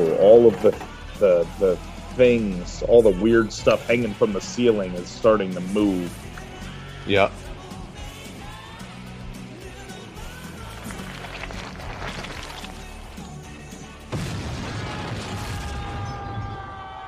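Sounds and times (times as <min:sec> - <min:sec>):
speech: 0:00.2 - 0:06.2, 0:07.1 - 0:07.4
loud explosion: 0:14.1 - 0:17.0.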